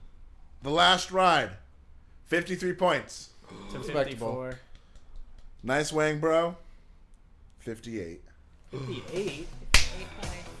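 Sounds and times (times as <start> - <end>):
speech: 0.6 - 1.6, 2.3 - 4.7, 5.6 - 6.6, 7.6 - 10.2
hands slapping together in a high five: 9.7 - 10.1.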